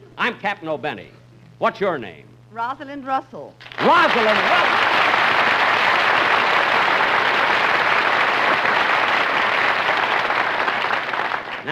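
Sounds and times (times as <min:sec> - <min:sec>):
speech: 0:00.2 - 0:05.4
waiters applauding in a restaurant: 0:03.6 - 0:11.7.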